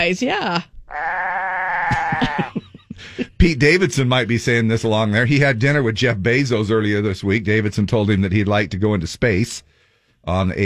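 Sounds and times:
speech: 0:00.0 - 0:01.1, 0:03.4 - 0:10.6
goat bleating: 0:00.9 - 0:02.6
laughter: 0:01.9 - 0:04.9.

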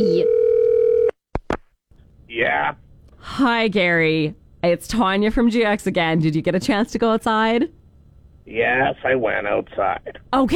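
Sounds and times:
electronic ringback tone through a phone line: 0:00.0 - 0:01.1
speech: 0:02.4 - 0:07.8, 0:08.5 - 0:10.5.

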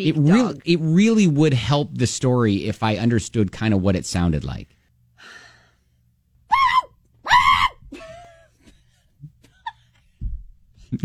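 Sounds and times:
speech: 0:00.0 - 0:05.4
person vocally imitating shrill screaming dog yelps: 0:06.5 - 0:07.8.

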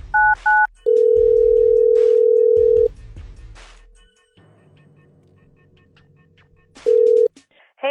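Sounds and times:
quick phone dialing beeps: 0:00.2 - 0:02.9, 0:06.9 - 0:07.3.

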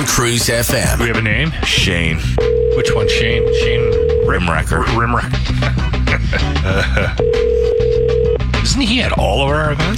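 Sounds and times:
music: 0:00.0 - 0:09.9
speech: 0:00.1 - 0:07.5, 0:08.6 - 0:09.9
electronic phone ring tone of a call placed to a listener: 0:02.4 - 0:04.5, 0:07.2 - 0:08.4
laughter: 0:05.4 - 0:07.7.

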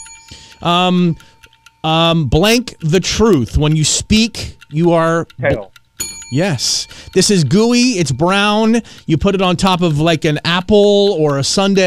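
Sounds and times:
bell ringing: 0:00.0 - 0:02.0, 0:06.0 - 0:08.9
speech: 0:00.6 - 0:05.7, 0:06.3 - 0:11.8.

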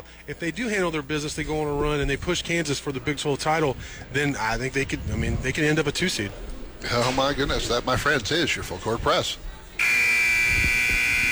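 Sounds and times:
speech: 0:00.3 - 0:10.0
loud sustained electronic buzzer tone: 0:09.8 - 0:11.3.

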